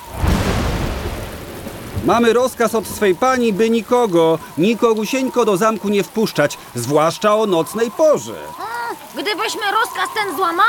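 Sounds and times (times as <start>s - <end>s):
rumble of thunder: 0.0s - 6.8s
steady wash of rain: 0.0s - 10.6s
speech: 2.0s - 10.6s.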